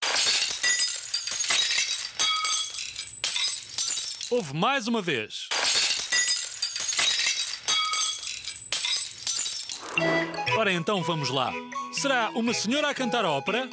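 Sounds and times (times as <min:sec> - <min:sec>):
tinkling glass shards: 0:00.0 - 0:04.5, 0:05.6 - 0:10.0
glass shattering: 0:00.0 - 0:04.6, 0:05.5 - 0:10.0
speech: 0:04.3 - 0:05.6, 0:10.0 - 0:13.7.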